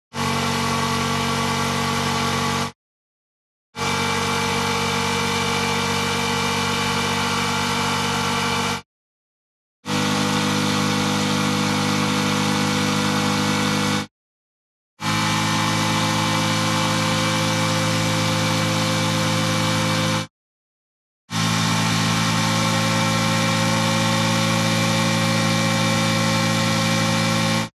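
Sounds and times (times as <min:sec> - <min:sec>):
motorcycle engine at high constant RPM ascending: 0:00.1 - 0:02.8, 0:03.8 - 0:08.8, 0:09.8 - 0:14.1, 0:15.0 - 0:20.3, 0:21.3 - 0:27.7.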